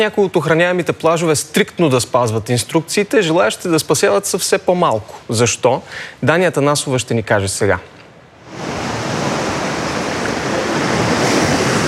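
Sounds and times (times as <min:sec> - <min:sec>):
speech: 0:00.0 - 0:08.0
Black Sea surf washing over a beach in Bulgaria in summer: 0:08.4 - 0:11.8.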